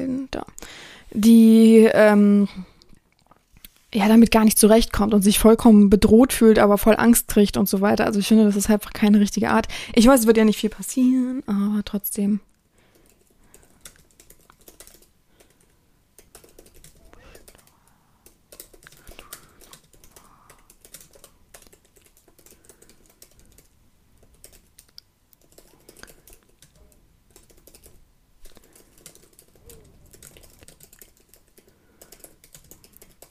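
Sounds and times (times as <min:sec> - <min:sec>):
speech: 0:00.4 - 0:02.7, 0:03.9 - 0:12.5
fast typing on a computer keyboard: 0:12.9 - 0:33.3.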